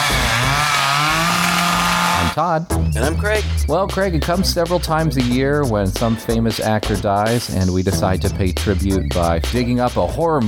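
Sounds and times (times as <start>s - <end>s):
chainsaw engine revving: 0.0s - 2.4s
speech: 2.4s - 10.4s.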